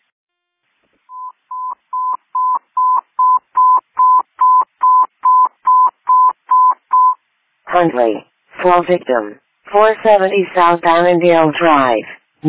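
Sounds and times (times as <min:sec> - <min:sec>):
telephone DTMF dialing tones: 0:01.1 - 0:07.2
speech: 0:07.8 - 0:12.4.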